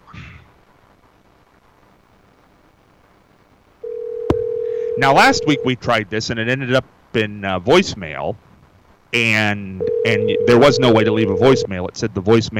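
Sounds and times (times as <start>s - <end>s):
telephone dialing tones: 3.8s - 5.7s, 9.8s - 11.7s
speech: 5.0s - 8.5s, 9.1s - 12.5s.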